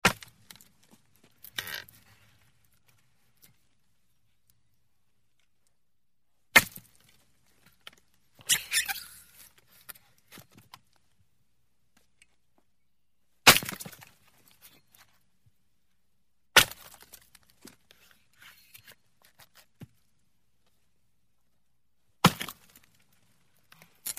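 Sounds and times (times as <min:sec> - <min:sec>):
chopping and splitting firewood: 0:00.0 - 0:00.7, 0:06.5 - 0:07.0, 0:13.5 - 0:14.1, 0:16.6 - 0:17.3, 0:22.2 - 0:22.7.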